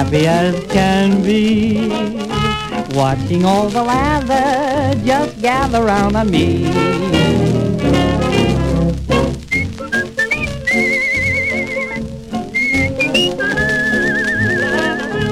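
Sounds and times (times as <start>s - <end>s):
speech: 0.0s - 7.7s
upbeat band accompaniment: 0.0s - 15.3s
person whistling a bright wavering melody with vibrato: 9.5s - 15.3s.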